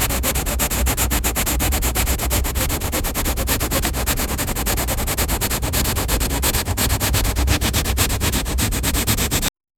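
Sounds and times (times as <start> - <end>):
abrasive sandpaper scratching metal: 0.0 - 9.5.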